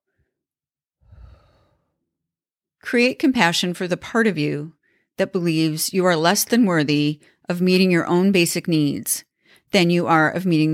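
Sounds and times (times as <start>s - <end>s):
deep inhale and exhale: 1.0s - 2.0s
speech: 2.9s - 10.7s.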